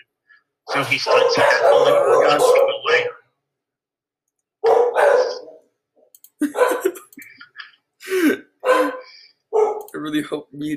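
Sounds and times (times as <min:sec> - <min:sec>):
speech: 0:00.7 - 0:03.2, 0:10.2 - 0:10.7
two dogs barking loudly: 0:00.9 - 0:03.1, 0:04.6 - 0:05.7, 0:06.5 - 0:07.0, 0:08.6 - 0:09.9.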